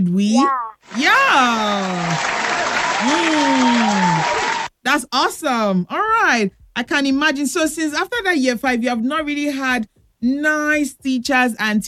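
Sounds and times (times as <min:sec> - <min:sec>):
speech: 0:00.0 - 0:11.8
steady applause from a group: 0:00.8 - 0:04.7
person whooping: 0:00.9 - 0:04.7.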